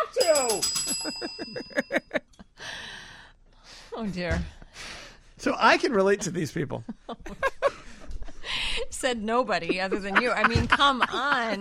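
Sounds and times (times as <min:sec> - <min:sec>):
small bell ringing rapidly: 0:00.0 - 0:02.5
laughter: 0:00.7 - 0:02.4, 0:05.8 - 0:08.8, 0:09.6 - 0:11.5
speech: 0:04.0 - 0:04.6, 0:05.4 - 0:07.4, 0:09.0 - 0:11.5.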